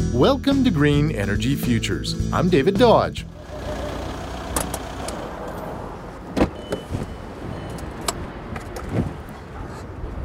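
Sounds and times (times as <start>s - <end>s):
speech: 0.2s - 3.3s
car engine rumbling at a card lock fuel station gas pump: 2.3s - 10.2s.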